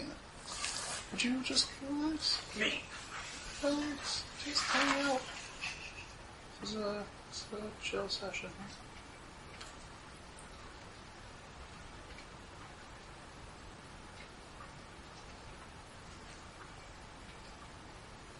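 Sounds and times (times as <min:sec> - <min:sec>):
rain falling outside: 0:00.0 - 0:18.3
speech: 0:01.2 - 0:03.0, 0:03.6 - 0:05.4, 0:06.6 - 0:08.9
faint drips and taps: 0:08.7 - 0:13.1, 0:14.1 - 0:18.1.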